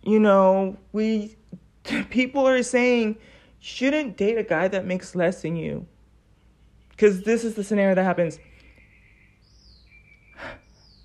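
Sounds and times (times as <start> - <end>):
speech: 0.0 - 5.9, 7.0 - 8.5
bird chirping with thin high sustained tones: 6.2 - 11.0.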